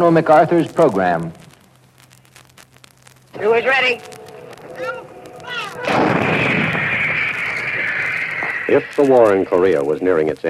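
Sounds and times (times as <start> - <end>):
speech: 0.0 - 1.4, 3.4 - 4.2, 8.7 - 10.4
soft rumbling: 0.2 - 10.4
howitzer firing on a gun line: 5.8 - 7.3.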